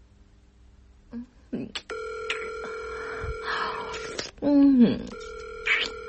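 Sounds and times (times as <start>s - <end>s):
long steady electronic ringback tone of an outgoing call: 1.9s - 4.3s, 5.1s - 6.0s.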